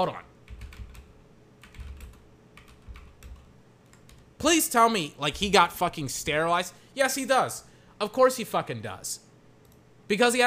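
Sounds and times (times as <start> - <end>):
speech: 0.0 - 0.3, 4.4 - 9.2, 10.1 - 10.4
computer keyboard typing a search query: 0.5 - 4.3.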